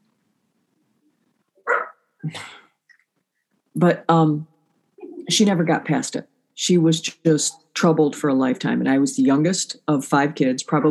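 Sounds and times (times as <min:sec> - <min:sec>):
dog barking: 0:01.6 - 0:02.0
faint dog yip: 0:01.6 - 0:02.0
speech: 0:03.8 - 0:04.5, 0:05.3 - 0:10.9.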